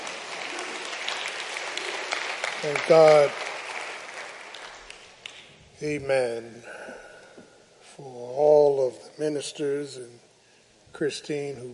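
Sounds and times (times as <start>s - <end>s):
congregation applauding: 0.0s - 5.6s
speech: 2.6s - 3.5s, 5.8s - 6.8s, 8.0s - 10.2s, 11.0s - 11.7s.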